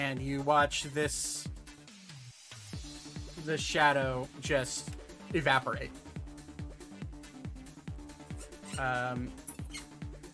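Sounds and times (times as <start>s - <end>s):
speech: 0.1s - 1.6s, 3.4s - 6.0s, 8.8s - 9.8s
squeaky toy bitten by a dog: 8.3s - 9.9s.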